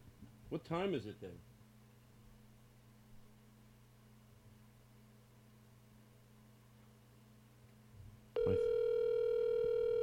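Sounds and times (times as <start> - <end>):
speech: 0.5 - 1.5
electronic phone tone of a call placed to a mobile number: 8.4 - 10.0.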